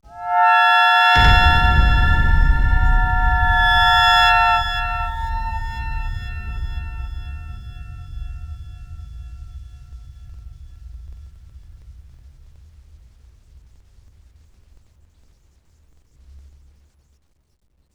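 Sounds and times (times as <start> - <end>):
scare sound effect: 0.1 - 8.4.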